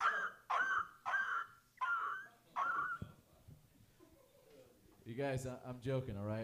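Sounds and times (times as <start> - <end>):
man's voice imitating dogs with rough yelping barks: 0.0 - 3.0
speech: 5.1 - 6.4.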